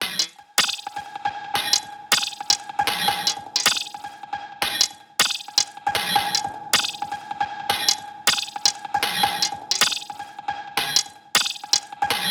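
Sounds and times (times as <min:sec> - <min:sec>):
percussion drum loop: 0:00.0 - 0:00.9, 0:01.7 - 0:04.0, 0:04.8 - 0:07.1, 0:07.7 - 0:10.1, 0:10.8 - 0:11.9.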